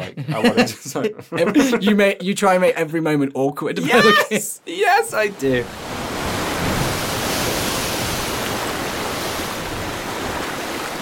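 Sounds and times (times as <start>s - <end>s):
laughter: 0.0s - 2.0s, 3.8s - 4.6s
speech: 0.2s - 6.0s
sea waves splashing: 5.1s - 10.9s.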